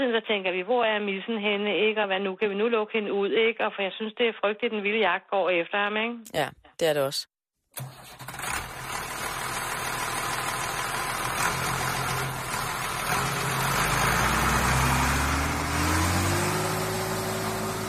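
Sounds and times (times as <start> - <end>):
speech: 0.0 - 8.5
tractor engine running: 7.8 - 17.8.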